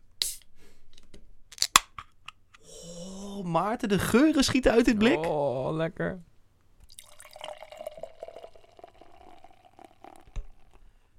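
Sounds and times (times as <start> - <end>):
speech: 3.4 - 6.3
chocolate ice cream stout pouring from a can into a glass: 6.8 - 10.9.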